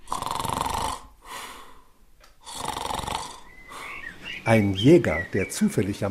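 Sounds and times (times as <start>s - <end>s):
loud rasping snoring: 0.0s - 1.2s, 2.4s - 3.6s
speech: 4.4s - 6.0s.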